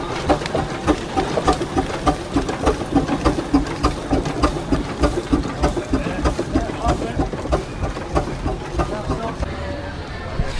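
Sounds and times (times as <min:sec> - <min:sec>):
big steam engine chugging slowly past: 0:00.0 - 0:10.5
faint voices: 0:05.0 - 0:10.5.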